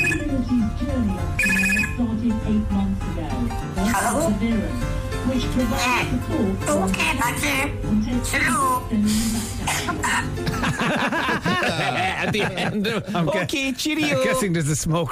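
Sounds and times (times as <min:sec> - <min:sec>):
pet imitating a telephone ringing: 0:00.0 - 0:00.4, 0:01.4 - 0:02.0
speech: 0:00.7 - 0:02.7, 0:04.0 - 0:15.1
laughter: 0:10.4 - 0:14.4.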